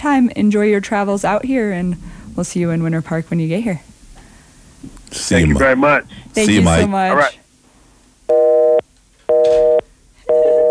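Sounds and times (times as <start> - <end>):
speech: 0.0 - 3.9, 4.8 - 7.4
telephone busy signal from a new phone system after a call ends: 8.3 - 10.6.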